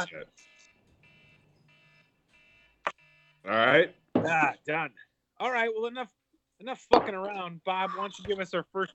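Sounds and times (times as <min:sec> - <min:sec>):
speech: 0:00.0 - 0:00.6, 0:03.4 - 0:08.9
electronic timer alarm beeping: 0:00.3 - 0:04.1.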